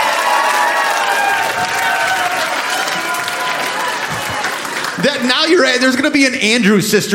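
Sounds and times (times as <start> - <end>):
whoops: 0.0 - 4.6
crowd applauding: 0.0 - 6.3
speech: 5.0 - 7.1.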